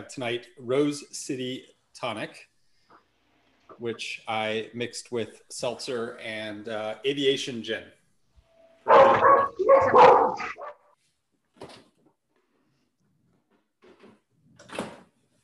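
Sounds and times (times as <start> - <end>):
speech: 0.0 - 2.5, 3.7 - 8.0, 9.0 - 10.6
puppy barking: 8.9 - 10.8.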